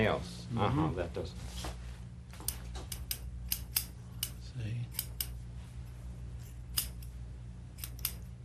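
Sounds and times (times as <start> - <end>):
speech: 0.0 - 1.8
low steady hum: 0.0 - 8.4
barber's scissors snipping hair: 2.3 - 5.4, 6.4 - 8.4.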